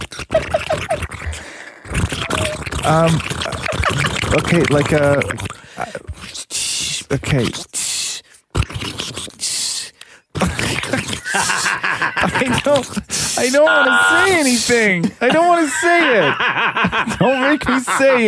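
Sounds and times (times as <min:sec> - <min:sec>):
bubbling water like a pot boiling: 0:00.0 - 0:05.8
laughter: 0:00.2 - 0:01.6, 0:02.3 - 0:05.3, 0:10.4 - 0:18.2
speech: 0:02.9 - 0:03.3, 0:03.9 - 0:05.4, 0:07.1 - 0:07.7, 0:12.8 - 0:18.2.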